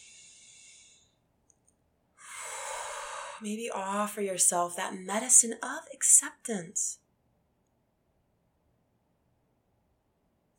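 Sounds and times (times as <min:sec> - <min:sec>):
deep breath: 0:00.0 - 0:01.2, 0:02.2 - 0:03.4
speech: 0:03.4 - 0:07.0.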